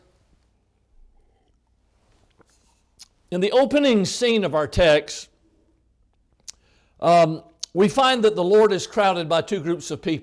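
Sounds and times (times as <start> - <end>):
preacher sipping water: 1.1 - 3.2
speech: 3.3 - 5.3, 7.0 - 10.2.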